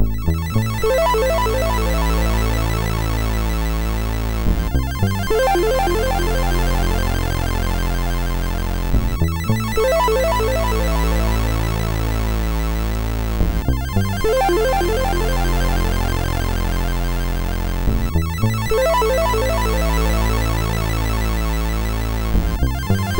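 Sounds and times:
MOS6581R2 SID chip music: 0.1 - 23.1.

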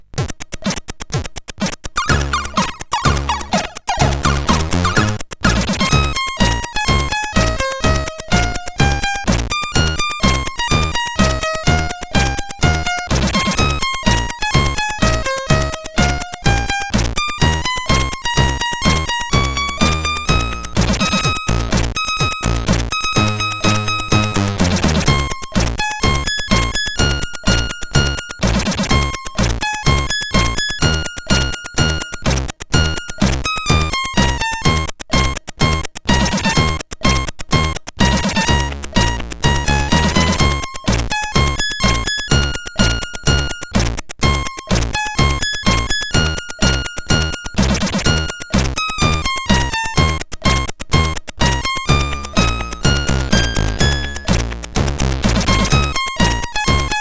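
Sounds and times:
chiptune music on a CSG8580R5 SID chip: 2.0 - 56.9.

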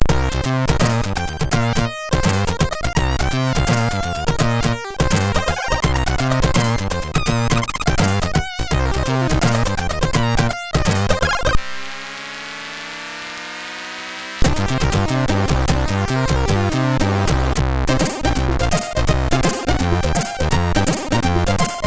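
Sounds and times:
MOS6581 chip synthesizer test tune: 0.0 - 21.8.

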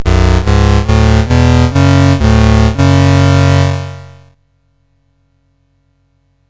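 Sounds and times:
SID chip game music: 0.0 - 4.3.

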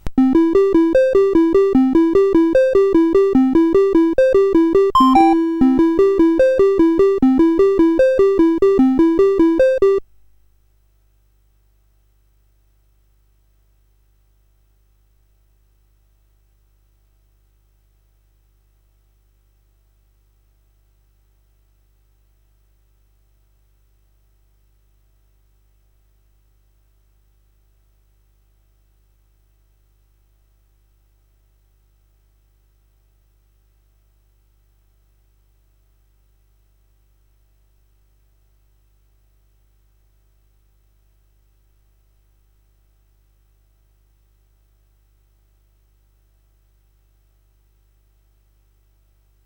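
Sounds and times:
chiptune music on a CSG8580R5 SID chip: 0.1 - 10.0.

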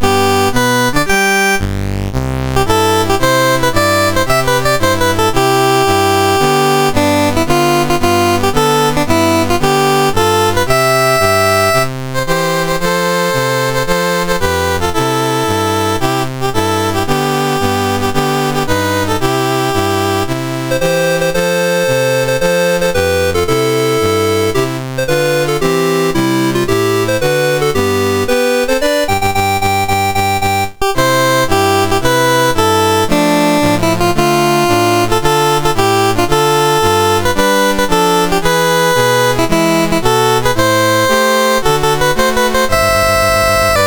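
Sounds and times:
national anthem on a MOS6581R2 sound chip: 0.0 - 43.8.

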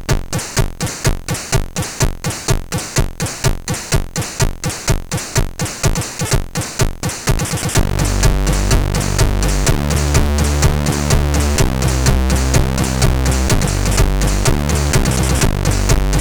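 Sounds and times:
death metal music on a SID sound chip: 0.2 - 16.1.

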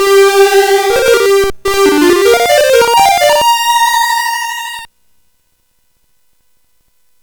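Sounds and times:
MOS 8580 SID chip game music: 0.0 - 4.9.

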